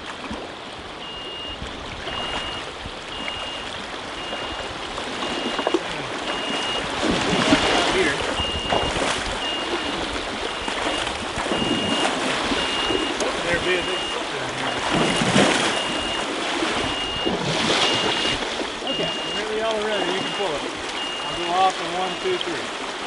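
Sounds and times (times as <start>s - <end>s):
splashing and sloshing in flowing stream water in Virginia: 0.0s - 23.0s
high electronic beep from electrofishing equipment in Virginia: 1.0s - 22.6s
faint voices: 5.6s - 8.8s, 13.1s - 16.2s, 17.9s - 22.7s.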